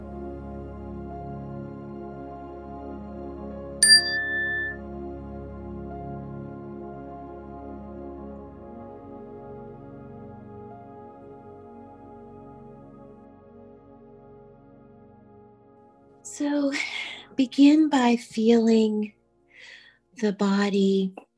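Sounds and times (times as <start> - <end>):
bright meditation chime ringing: 3.8 - 4.8
speech: 16.4 - 19.2, 20.2 - 21.2.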